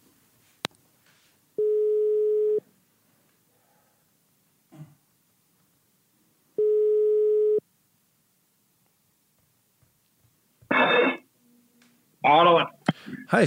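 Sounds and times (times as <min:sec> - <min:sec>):
ringback tone of an outgoing phone call: 0:01.6 - 0:02.6, 0:06.6 - 0:07.6
speech: 0:12.3 - 0:12.6.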